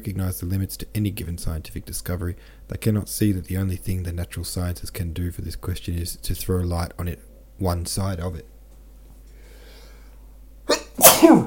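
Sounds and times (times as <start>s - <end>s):
speech: 0.0s - 8.5s, 11.0s - 11.4s
person sneezing: 10.7s - 11.4s.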